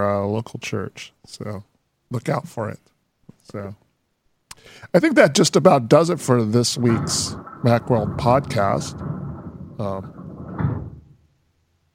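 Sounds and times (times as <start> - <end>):
speech: 0.0 - 2.9, 3.5 - 3.8, 4.6 - 9.2, 9.8 - 10.2
garage door opening: 6.2 - 11.4.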